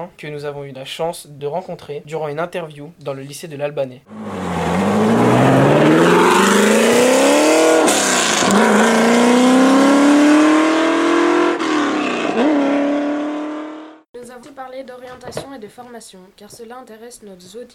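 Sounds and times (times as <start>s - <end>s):
speech: 0.0s - 4.6s, 15.6s - 17.7s
GT40 race car engine revving through the gears: 4.1s - 14.0s.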